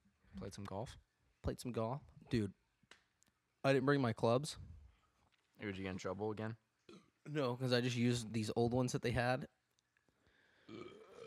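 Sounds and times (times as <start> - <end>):
speech: 0.4 - 2.6, 3.6 - 4.8, 5.6 - 6.6, 7.3 - 9.6
loud burp into the microphone: 6.9 - 7.4, 10.6 - 11.2.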